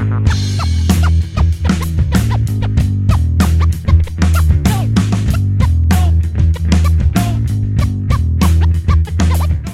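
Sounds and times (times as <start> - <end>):
scratching ringtone: 0.2 - 9.6.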